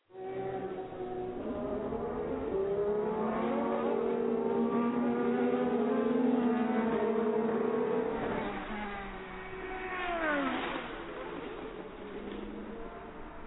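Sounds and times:
race car engine accelerating uphill off turn 8 on a race track: 0.2s - 13.4s.

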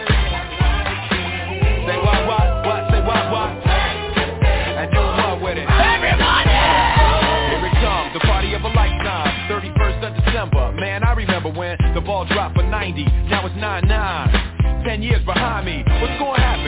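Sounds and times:
steady pounding bass beat: 0.0s - 16.6s
lively party crowd yelling and whooping: 1.5s - 9.2s.

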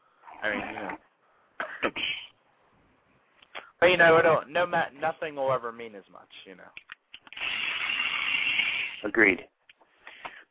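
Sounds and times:
speech: 0.4s - 1.0s, 1.8s - 2.2s, 3.8s - 6.9s, 9.0s - 9.6s
power drill drilling on a door to take the doorknob off: 7.3s - 9.1s.

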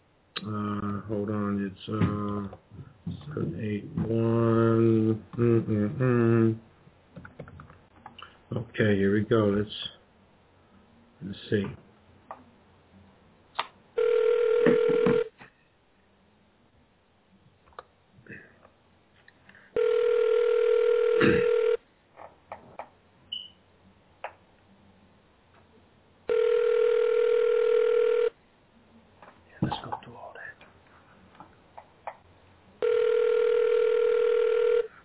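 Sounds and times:
speech: 0.4s - 6.7s, 8.5s - 10.0s, 11.2s - 11.8s
telephone ringback tone while calling a locker room: 14.0s - 15.3s, 19.8s - 21.8s, 26.3s - 28.4s, 32.8s - 34.9s.

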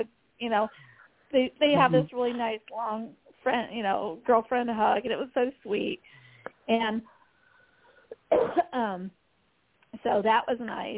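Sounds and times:
speech: 0.0s - 7.1s, 8.3s - 9.2s, 10.0s - 10.9s
person coughing: 1.8s - 2.1s, 8.1s - 8.7s.

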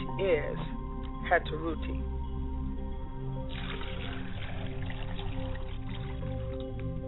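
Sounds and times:
speech: 0.2s - 2.1s
liquid poured out as a libation: 3.5s - 7.0s.

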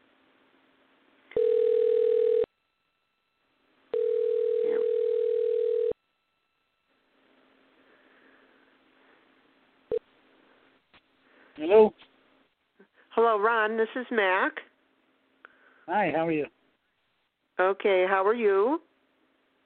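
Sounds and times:
telephone line tones as a caller dials in: 1.3s - 2.6s, 3.9s - 6.0s
speech: 11.6s - 12.0s, 13.2s - 14.7s, 15.9s - 16.6s, 17.6s - 18.9s.

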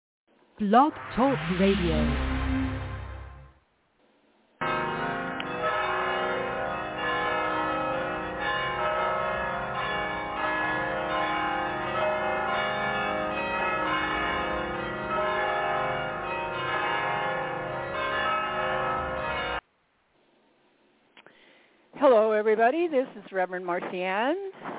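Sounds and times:
speech: 0.6s - 2.3s, 22.6s - 24.7s
mission church bells ringing: 4.6s - 19.6s.

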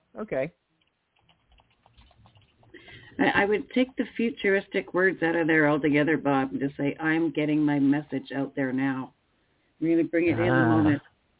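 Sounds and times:
speech: 0.2s - 0.6s, 3.2s - 9.2s, 9.8s - 11.1s
typing on a computer keyboard: 0.8s - 2.8s.

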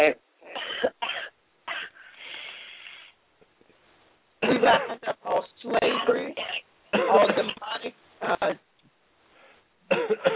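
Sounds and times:
speech: 0.0s - 0.2s, 4.4s - 8.6s
woman coughing in harsh bursts: 0.5s - 2.0s, 4.4s - 5.2s, 5.8s - 7.6s, 9.9s - 10.3s
woman's long raspy wheezing breath: 1.9s - 3.2s.

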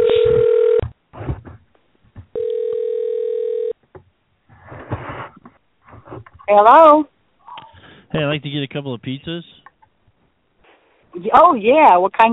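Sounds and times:
telephone dial tone: 0.0s - 0.8s, 2.4s - 3.8s
speech: 6.5s - 7.1s, 8.1s - 9.6s, 11.2s - 12.3s.

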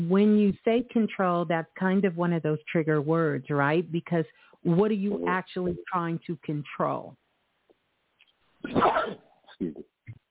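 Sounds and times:
speech: 0.1s - 7.2s, 8.6s - 9.9s
loud sneeze: 8.6s - 9.3s.

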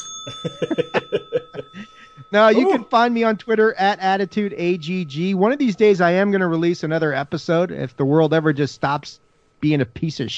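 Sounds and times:
bell ringing: 0.0s - 5.2s
speech: 0.2s - 10.3s
chuckling laughter: 0.3s - 2.9s.

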